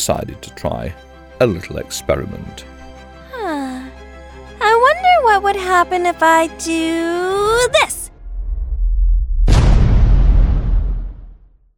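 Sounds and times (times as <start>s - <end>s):
speech: 0.0s - 2.7s, 5.4s - 8.0s
low rumble: 7.5s - 11.7s
massive explosion: 8.2s - 11.7s.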